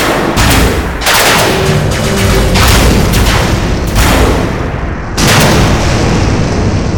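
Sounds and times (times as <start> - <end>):
giant robot firing all its weapons in a barrage of booms and blasts: 0.0 - 6.9.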